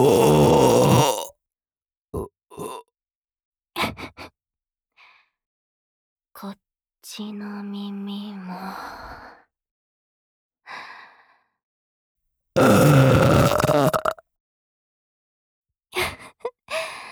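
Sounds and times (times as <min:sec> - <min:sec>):
speech: 0:00.0 - 0:00.4, 0:07.2 - 0:08.0
long loud burp: 0:00.0 - 0:01.3, 0:12.6 - 0:14.2.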